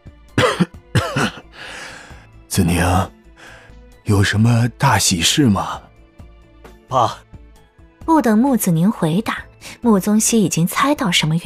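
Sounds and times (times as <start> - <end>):
older man coughing: 0.4 - 1.6
speech: 2.6 - 3.2, 4.1 - 5.9, 6.9 - 7.2, 8.1 - 11.4.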